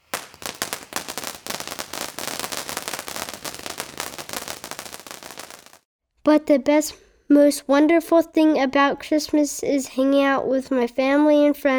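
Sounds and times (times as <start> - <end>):
Christmas fireworks crackling and popping: 0.0 - 5.9
speech: 6.3 - 11.7.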